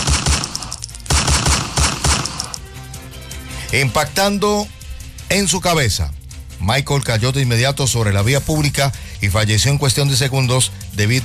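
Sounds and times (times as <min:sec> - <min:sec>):
firearm gunshots fired repeatedly during a street attack: 0:00.0 - 0:02.7
speech: 0:03.7 - 0:11.2.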